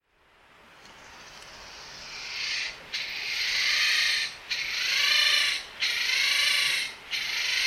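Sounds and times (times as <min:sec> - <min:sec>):
Japanese giant flying squirrel calling in harsh grating rasps in Osaka: 0:01.5 - 0:07.6.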